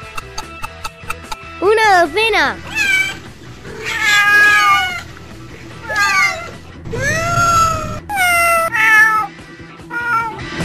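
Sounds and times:
speech: 1.6 - 2.7
several cats meowing and yowling: 2.6 - 10.5.

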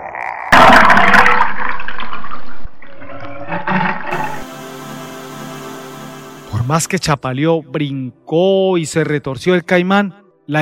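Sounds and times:
water gushing and bubbling into the mouth of a drowning caiman: 0.5 - 4.4
speech: 6.7 - 10.6.

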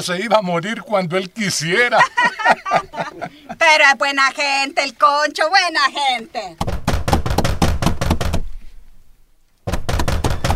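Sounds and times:
speech: 0.0 - 6.8
laughter: 1.6 - 3.8
police pounding on a door: 6.6 - 8.5, 9.7 - 10.5.

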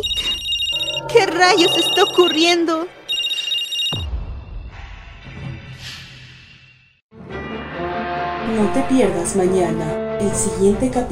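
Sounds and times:
electronic phone ringtone: 0.0 - 4.1
speech: 1.4 - 3.0, 8.6 - 11.1.

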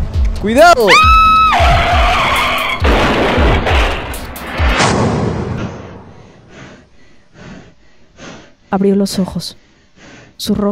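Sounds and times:
speech: 0.4 - 1.7, 8.7 - 9.6, 10.4 - 10.7
car tires screeching in a skid as brakes fail: 1.5 - 2.8
heavy rumbling thuds and crashing of a car being rammed: 2.8 - 6.2.

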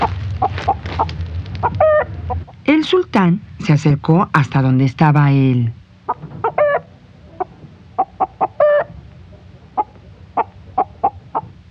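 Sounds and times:
rooster clucking and squawking: 0.0 - 2.6, 6.0 - 11.6
low rumble: 0.0 - 11.6
speech: 2.8 - 5.8.

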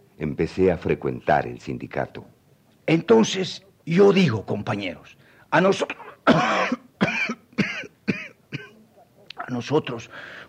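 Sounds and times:
speech: 0.2 - 6.8, 9.5 - 10.4
harsh throaty coughs: 5.8 - 8.8.

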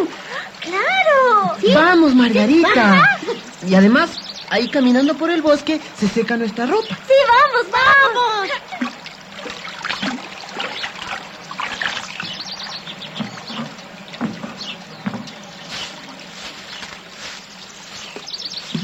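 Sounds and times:
spring water trickling in a forest: 0.0 - 18.8
birds chirping and calling in a forest: 0.3 - 18.8
speech: 1.7 - 8.8.

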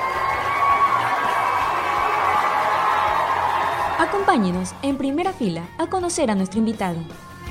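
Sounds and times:
crowd applauding loudly to welcome a guest: 0.0 - 4.9
speech: 4.0 - 7.3.

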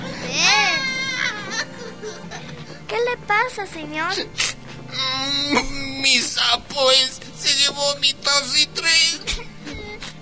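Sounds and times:
upset man crying in a wailing voice: 0.6 - 2.5, 4.9 - 10.2
speech: 2.9 - 9.5.

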